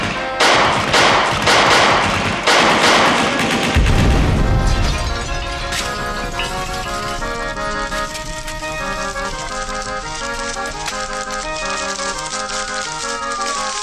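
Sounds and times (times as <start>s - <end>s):
loud gunshots: 0.0s - 13.8s.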